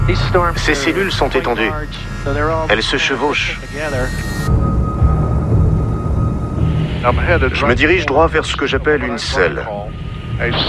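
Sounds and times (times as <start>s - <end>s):
speech: 0.1s - 4.7s, 7.0s - 10.6s
deep rumble of thunder from approaching storms: 4.5s - 10.6s.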